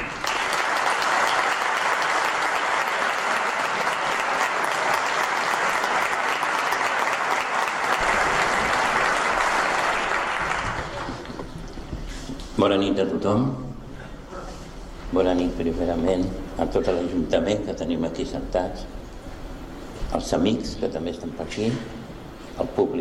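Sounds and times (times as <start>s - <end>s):
large audience applauding at a photography award ceremony: 0.0s - 11.7s
speech: 12.6s - 13.6s, 15.2s - 19.0s, 20.1s - 22.0s, 22.6s - 23.0s.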